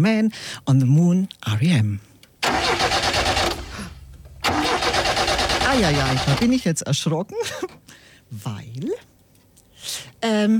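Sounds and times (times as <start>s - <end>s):
speech: 0.0s - 2.7s, 5.7s - 9.1s, 9.8s - 10.5s
car engine cranking but failing to start: 2.4s - 6.6s.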